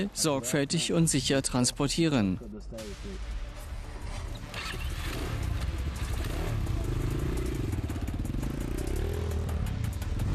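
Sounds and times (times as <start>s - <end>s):
speech: 0.0s - 3.4s
vehicle engine roaring driving fast across a field: 3.2s - 10.3s.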